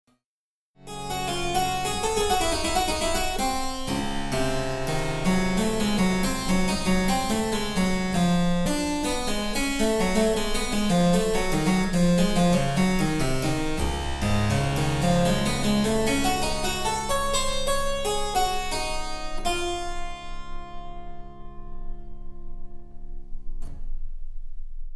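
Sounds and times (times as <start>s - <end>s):
harpsichord: 0.9s - 21.5s.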